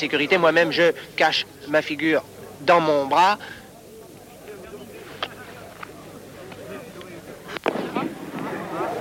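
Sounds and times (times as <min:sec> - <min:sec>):
speech: 0:00.0 - 0:03.6
murmur of voices: 0:00.0 - 0:08.9
signal flares launching with sharp pops: 0:07.5 - 0:08.9.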